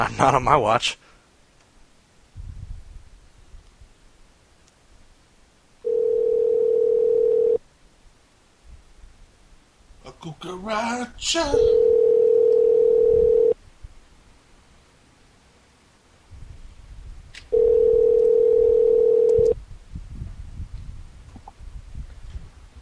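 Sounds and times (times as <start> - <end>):
speech: 0.0 - 1.0, 10.2 - 11.8
phone ringback tone while calling a cell phone: 5.8 - 7.6, 11.7 - 13.6, 17.5 - 19.6.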